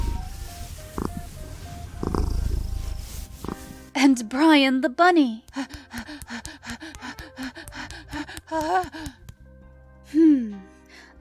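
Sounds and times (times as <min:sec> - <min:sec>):
rustling: 0:00.0 - 0:03.9
cat purring: 0:00.4 - 0:03.8
speech: 0:04.1 - 0:06.0, 0:08.6 - 0:09.2.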